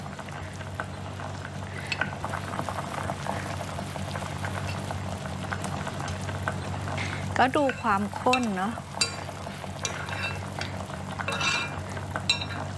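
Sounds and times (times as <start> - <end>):
thick sweet fish sauce simmering in a pot over low heat: 0.0 - 12.7
speech: 7.4 - 8.8
faint clinks: 7.7 - 12.7.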